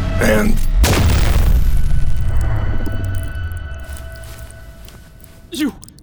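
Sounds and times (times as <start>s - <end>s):
speech: 0.2s - 0.7s
sci-fi blaster pistol firing against a head: 0.7s - 4.0s.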